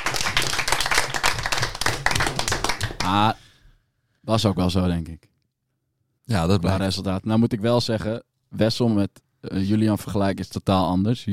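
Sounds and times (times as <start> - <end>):
small group clapping: 0.0 - 3.3
speech: 3.1 - 3.4, 4.2 - 5.3, 6.3 - 11.3.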